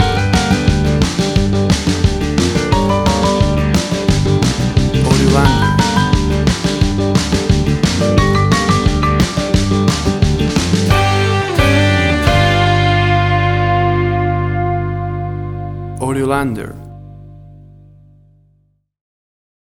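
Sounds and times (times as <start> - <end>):
jukebox country shuffle rodeo music: 0.0 - 17.2.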